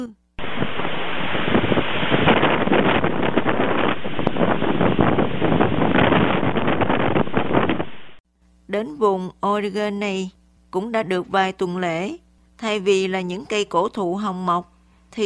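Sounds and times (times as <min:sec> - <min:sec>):
speech: 0:00.0 - 0:00.2, 0:08.7 - 0:15.2
strong sea wind roaring across the microphone: 0:00.4 - 0:08.2.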